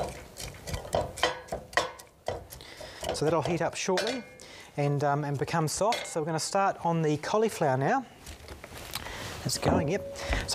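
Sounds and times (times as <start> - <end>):
stirring pressed garlic in a heated pan: 0.0 - 4.4
speech: 3.2 - 8.2, 9.4 - 10.5.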